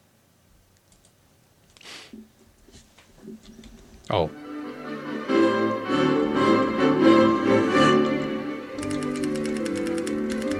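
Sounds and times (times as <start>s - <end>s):
speech: 4.1s - 4.4s
sustained musical tonal background: 4.3s - 10.5s
computer keyboard keys clicking: 8.8s - 10.5s.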